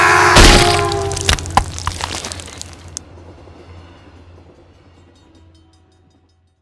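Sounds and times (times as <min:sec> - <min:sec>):
train hitting a man: 0:00.1 - 0:03.1.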